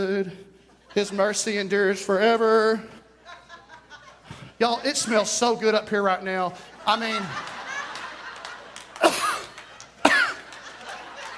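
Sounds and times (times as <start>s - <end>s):
speech: 0.0s - 3.0s, 4.6s - 7.6s
laughter: 0.6s - 11.3s
sharp coughs after breathing in a strong eucalyptus cleaning scent: 9.0s - 10.5s.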